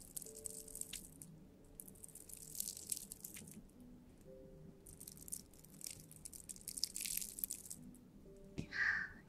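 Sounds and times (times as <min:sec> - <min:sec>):
ice cubes crunching as bitten or handled: 0:00.0 - 0:01.2, 0:01.8 - 0:03.6, 0:04.9 - 0:07.8
faint steady tonal background: 0:00.0 - 0:06.7, 0:07.6 - 0:09.2.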